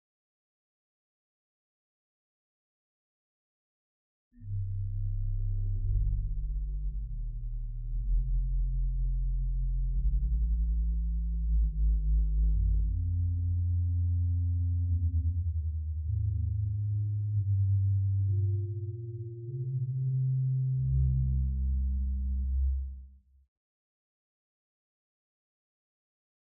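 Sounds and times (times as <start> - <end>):
organ sub bass 16 stop: 4.4 - 23.0.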